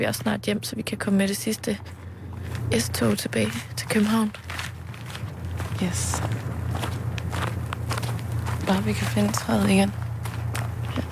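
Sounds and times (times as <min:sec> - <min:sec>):
speech: 0:00.0 - 0:02.1, 0:02.7 - 0:04.7, 0:05.8 - 0:06.9, 0:08.7 - 0:10.0
steady low rumble: 0:00.0 - 0:11.0
footsteps crunching while walking into a wood: 0:01.7 - 0:11.0.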